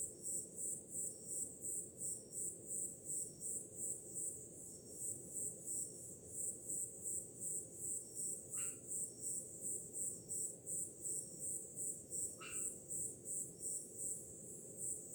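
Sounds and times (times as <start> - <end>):
crickets chirping on a summer night: 0.0 - 15.1.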